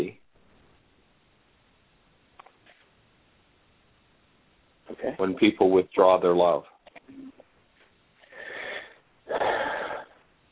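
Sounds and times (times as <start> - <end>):
speech: 5.2 - 6.7
deep breathing: 8.2 - 10.2
faint sniff: 8.2 - 10.2.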